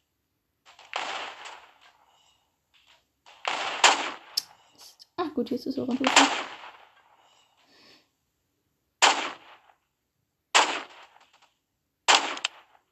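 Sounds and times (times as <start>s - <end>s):
gunshots in a shooting game: 0.7s - 4.8s, 5.9s - 7.4s, 9.0s - 9.8s, 10.5s - 11.5s, 12.1s - 12.9s
speech: 5.2s - 6.6s.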